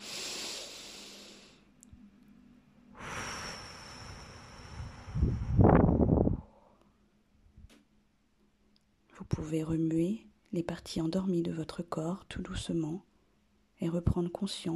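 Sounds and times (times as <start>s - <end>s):
slow deep breath in during a guided relaxation exercise: 0.0s - 1.6s, 3.0s - 6.8s
speech: 9.4s - 13.1s, 13.8s - 14.7s.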